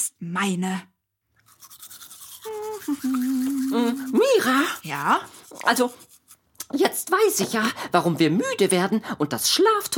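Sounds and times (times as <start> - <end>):
speech: 0.2 - 0.9, 2.9 - 6.0, 6.7 - 9.9
toothbrush scrubbing against teeth at bedtime: 1.3 - 8.0.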